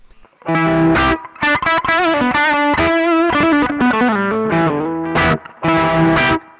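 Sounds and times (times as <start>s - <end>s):
electric guitar with mild overdrive playing sustained notes and chords: 0.3s - 6.5s.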